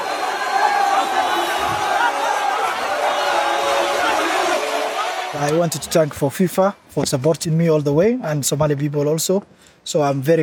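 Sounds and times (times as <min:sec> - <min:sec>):
crowd cheering a hero's welcome in Mogadishu: 0:00.0 - 0:06.4
speech: 0:05.4 - 0:10.4.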